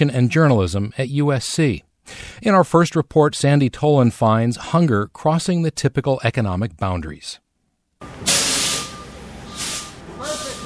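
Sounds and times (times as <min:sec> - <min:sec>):
speech: 0:00.0 - 0:07.4
semi-truck low engine rumble backing into loading dock: 0:08.0 - 0:10.6
steady high-pitched tone: 0:08.0 - 0:10.6
semi-truck air-brake hiss: 0:08.2 - 0:10.6.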